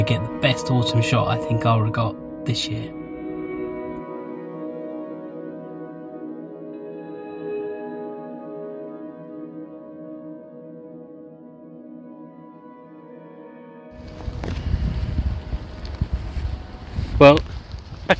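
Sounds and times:
speech: 0:00.0 - 0:03.0, 0:17.2 - 0:17.5
steady tonal musical passage: 0:00.0 - 0:17.5
rough wind gusts buffeting the microphone outdoors in woodland: 0:14.0 - 0:18.1.

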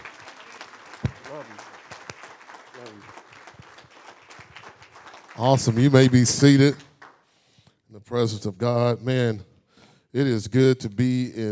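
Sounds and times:
congregation applauding: 0:00.0 - 0:07.3
speech: 0:01.3 - 0:01.7, 0:05.4 - 0:06.9, 0:08.1 - 0:09.5, 0:10.1 - 0:11.5.

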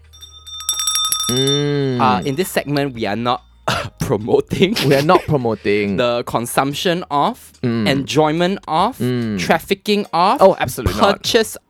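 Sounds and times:
quick flurry of metallic dings: 0:00.0 - 0:03.4
bright clear bell sound effect ringing: 0:00.0 - 0:03.6
speech: 0:01.3 - 0:11.6.

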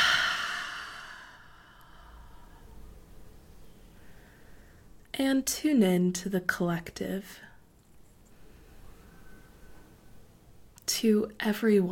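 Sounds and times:
deep breath exhaled during a guided breathing exercise: 0:00.0 - 0:02.8
speech: 0:05.2 - 0:07.5, 0:11.0 - 0:11.9.

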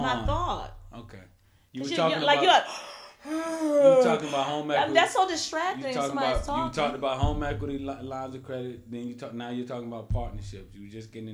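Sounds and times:
speech: 0:01.0 - 0:11.3
person yawning: 0:02.7 - 0:04.4
laughter: 0:03.6 - 0:05.2.

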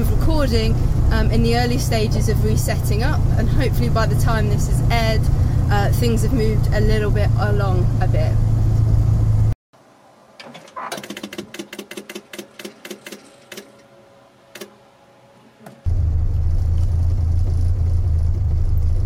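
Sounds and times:
classic Morris Minor car engine droning while driving: 0:00.0 - 0:10.9, 0:13.7 - 0:19.0
speech: 0:00.4 - 0:08.5
rapid evenly spaced mechanical clicking: 0:10.5 - 0:13.8.

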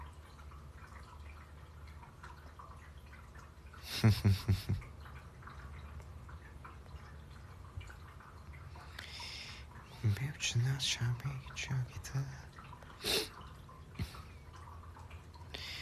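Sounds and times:
pet's water bottle gurgling and dripping: 0:00.0 - 0:15.8
low hiss: 0:03.8 - 0:04.8, 0:08.8 - 0:13.4
laughter: 0:03.9 - 0:04.8
speech: 0:04.0 - 0:04.9, 0:10.1 - 0:13.2.

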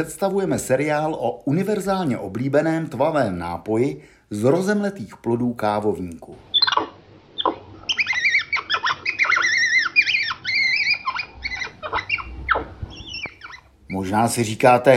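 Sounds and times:
speech: 0:00.0 - 0:06.5, 0:13.9 - 0:14.9
Central American capuchin monkey squeaky chirps and whistling calls: 0:06.5 - 0:14.0.

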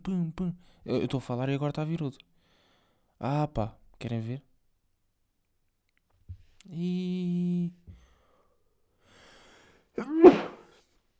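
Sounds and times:
speech: 0:00.0 - 0:02.4, 0:03.2 - 0:04.5, 0:06.6 - 0:07.8, 0:10.0 - 0:10.5
human sneeze: 0:10.1 - 0:10.6
quick intake of breath: 0:10.2 - 0:10.6.

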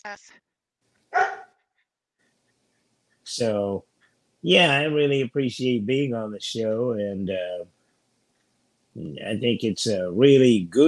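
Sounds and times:
speech: 0:00.0 - 0:01.4, 0:03.3 - 0:07.8, 0:09.0 - 0:10.8
dog barking: 0:01.1 - 0:01.6.

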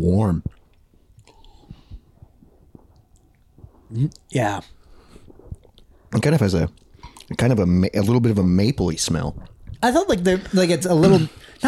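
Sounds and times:
speech: 0:00.0 - 0:00.6, 0:03.9 - 0:04.8, 0:06.1 - 0:11.6
person sipping a barrel-aged drink: 0:00.5 - 0:06.0, 0:06.7 - 0:07.4.

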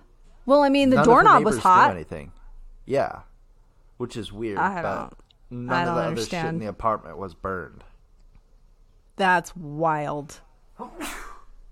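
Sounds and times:
speech: 0:00.5 - 0:03.3, 0:04.0 - 0:07.9, 0:09.2 - 0:11.2
person sneezing: 0:10.8 - 0:11.6.

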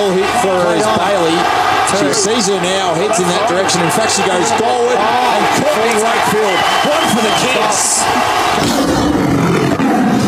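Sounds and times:
speech: 0:00.0 - 0:09.2
tiger roar with rough growling texture: 0:08.4 - 0:10.2.

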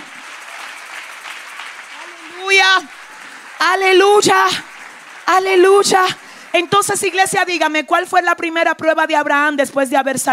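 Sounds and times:
church audience applauding: 0:00.0 - 0:08.2
speech: 0:02.6 - 0:03.0, 0:03.6 - 0:04.7, 0:05.3 - 0:10.3.

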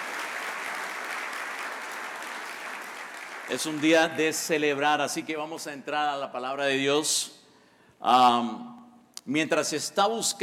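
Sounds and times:
crowd applauding in a hall: 0:00.0 - 0:04.6
speech: 0:03.5 - 0:07.4, 0:08.0 - 0:10.4.

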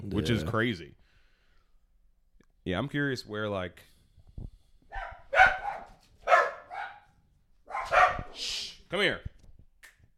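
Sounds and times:
speech: 0:00.1 - 0:01.0, 0:02.6 - 0:04.5, 0:08.4 - 0:09.3
several dogs barking and yelping: 0:04.9 - 0:07.1, 0:07.7 - 0:08.4.

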